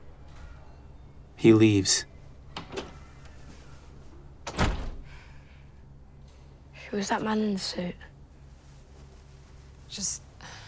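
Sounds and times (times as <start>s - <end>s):
speech: 1.4s - 2.1s, 7.0s - 8.1s, 9.9s - 10.6s
door swinging thunk: 4.4s - 5.0s.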